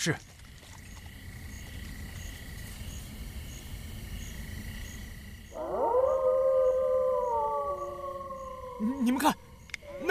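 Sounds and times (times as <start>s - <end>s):
speech: 0.0s - 0.3s, 9.0s - 9.4s
wolf pack howling: 5.5s - 10.1s.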